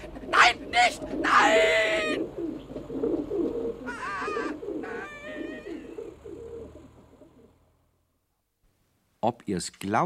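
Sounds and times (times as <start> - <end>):
pigeon cooing in a throaty burble: 0.0 - 7.6
speech: 0.5 - 1.7, 9.5 - 10.0.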